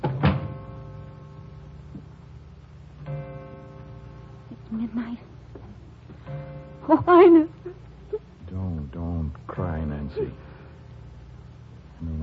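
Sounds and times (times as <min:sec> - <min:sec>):
door thudding shut: 0:00.0 - 0:00.6
steady droning hum: 0:00.0 - 0:12.2
speech: 0:04.8 - 0:05.4, 0:06.9 - 0:07.6, 0:09.6 - 0:10.5.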